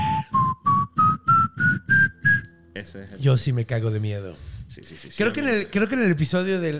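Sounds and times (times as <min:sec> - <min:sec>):
person with dry lips whistling a rising musical scale: 0:00.0 - 0:02.5
speech: 0:02.8 - 0:06.7.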